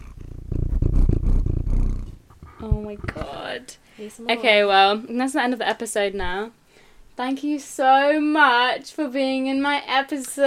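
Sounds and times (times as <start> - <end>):
cat purring: 0.0 - 3.6
speech: 2.7 - 6.6, 7.2 - 10.4.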